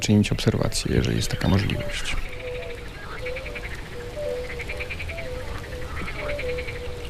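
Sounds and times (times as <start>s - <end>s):
speech: 0.0s - 2.3s
frogs croaking mating calls on a spring night: 0.0s - 7.0s.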